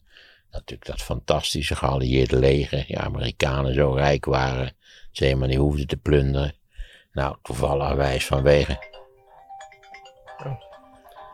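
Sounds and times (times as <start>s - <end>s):
speech: 0.7s - 6.6s, 7.2s - 8.9s, 10.4s - 10.6s
mobile phone alarm electronic melody of bright stepped tones: 8.5s - 11.3s.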